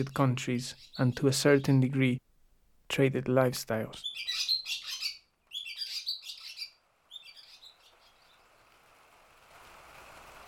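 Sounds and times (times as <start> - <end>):
barn swallows giving high rapid chirps inside a barn: 0.0 - 2.0, 3.9 - 8.5
speech: 0.0 - 2.2, 2.9 - 4.4
steady hiss: 6.8 - 10.4.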